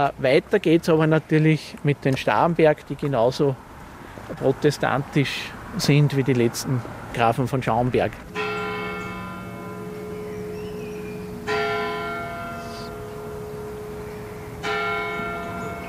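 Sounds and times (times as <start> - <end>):
speech: 0.0 - 8.4
town parish church bells ringing: 8.3 - 15.8.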